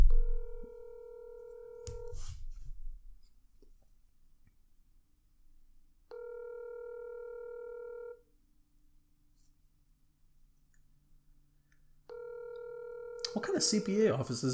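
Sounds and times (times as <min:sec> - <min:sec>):
ringback tone of an outgoing telephone call to an office line: 0:00.1 - 0:02.2, 0:06.1 - 0:08.2, 0:12.1 - 0:14.1
speech: 0:13.4 - 0:14.5.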